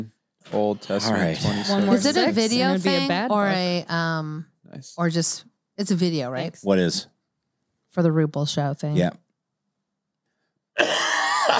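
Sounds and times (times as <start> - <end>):
speech: 0.0 - 7.1, 7.9 - 9.2
loud raspy cough: 10.8 - 11.5.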